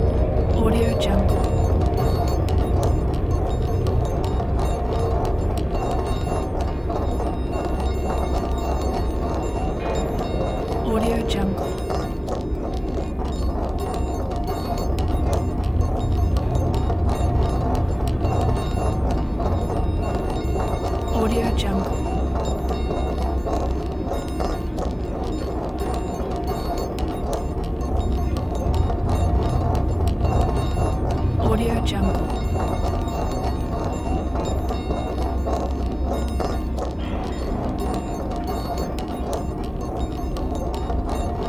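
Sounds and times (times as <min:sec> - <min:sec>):
dark ambience: 0:00.0 - 0:41.4.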